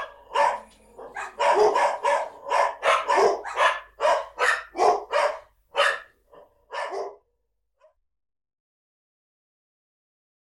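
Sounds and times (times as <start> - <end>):
farm dog barking: 0.0 - 8.0.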